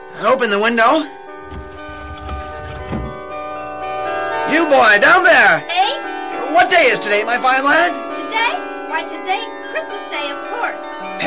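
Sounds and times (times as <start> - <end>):
bells ringing on Christmas Day: 0.0 - 11.2
speech: 0.2 - 1.6, 4.6 - 11.2.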